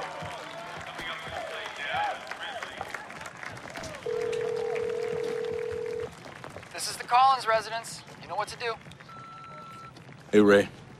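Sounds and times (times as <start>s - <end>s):
noisy stadium crowd cheering and chattering: 0.0s - 10.9s
steady electronic phone dialing tone: 4.0s - 6.1s
speech: 7.3s - 8.9s, 10.3s - 10.8s.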